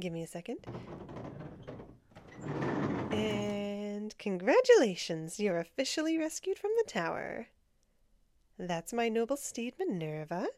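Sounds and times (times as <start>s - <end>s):
speech: 0.0s - 1.2s, 4.2s - 7.6s, 8.6s - 10.5s
door in a tower opening with a muffled mechanical rattle and scrape: 0.6s - 3.8s.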